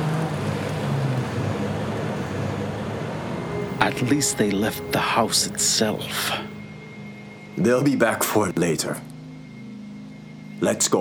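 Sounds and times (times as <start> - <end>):
broadband road noise: 0.0 - 7.6
heavy vehicle engine rumbling with low droning hum: 0.2 - 6.6
speech: 3.8 - 6.5, 7.6 - 9.1, 10.6 - 10.9.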